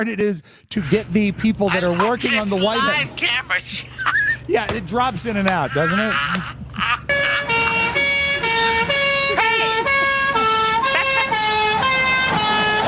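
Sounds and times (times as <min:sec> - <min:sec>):
speech: 0:00.0 - 0:07.0
laughter: 0:00.7 - 0:08.0, 0:09.2 - 0:12.8
French police car siren two-tone hi-lo wail: 0:07.1 - 0:12.8.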